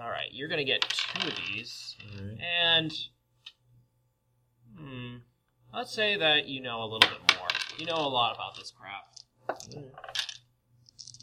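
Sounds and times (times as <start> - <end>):
speech: 0.4 - 3.2, 5.2 - 10.3
dice rolled across a hard tabletop during a role-playing game: 0.7 - 2.2, 7.0 - 11.2.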